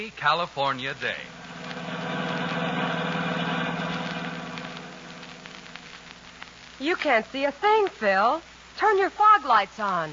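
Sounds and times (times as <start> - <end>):
speech: 0.0 - 1.4, 6.8 - 10.1
car engine droning while driving through the San Bernardino Valley in California: 0.8 - 6.6.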